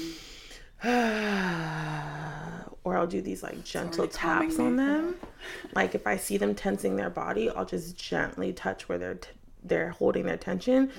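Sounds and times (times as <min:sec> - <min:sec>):
midwife's quick sharp inhale demonstrating labour breathing: 0:00.0 - 0:00.8
midwife's long loud voiced exhale demonstrating labour breathing: 0:00.0 - 0:02.1
speech: 0:03.0 - 0:10.9.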